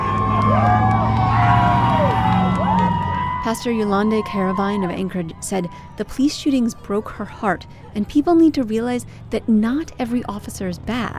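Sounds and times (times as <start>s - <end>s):
large crowd cheering and whooping on sidewalks: 0.0s - 7.0s
speech: 3.5s - 11.1s.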